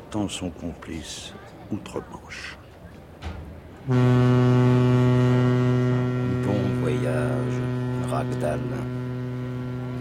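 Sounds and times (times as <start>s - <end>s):
speech: 0.1s - 2.6s, 3.9s - 4.6s, 8.2s - 9.0s
steamer horn as the ship leaves port: 3.8s - 9.9s.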